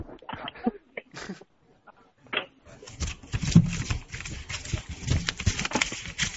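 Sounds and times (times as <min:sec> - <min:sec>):
phone brushing against hair: 0:02.7 - 0:06.3.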